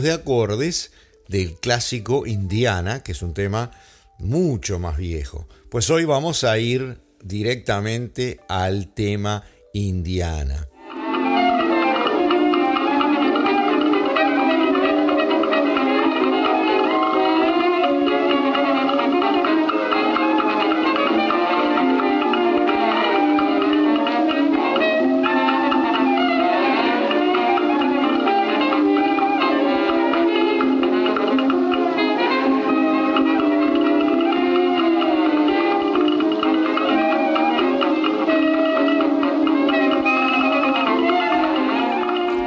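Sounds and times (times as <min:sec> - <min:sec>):
speech: 0:00.0 - 0:10.7
early dixieland jazz band on a 1917 gramophone recording: 0:10.7 - 0:42.4.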